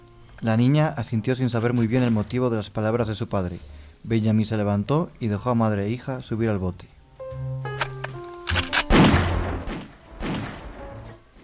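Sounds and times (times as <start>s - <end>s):
speech: 0.4s - 6.9s
pistol gunshots: 8.5s - 10.8s.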